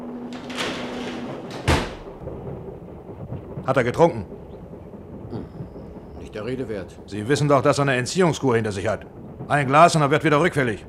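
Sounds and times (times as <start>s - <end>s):
door closing with a dull heavy thud: 0.2s - 2.2s
speech: 3.7s - 4.4s, 6.4s - 10.8s.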